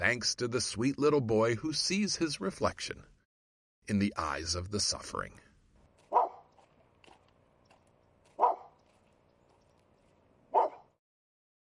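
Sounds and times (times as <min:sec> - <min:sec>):
speech: 0:00.1 - 0:03.1, 0:03.9 - 0:05.4
small lame snaggle-toothed shih tzu dog barking: 0:06.0 - 0:06.5, 0:08.3 - 0:08.8, 0:10.5 - 0:11.0.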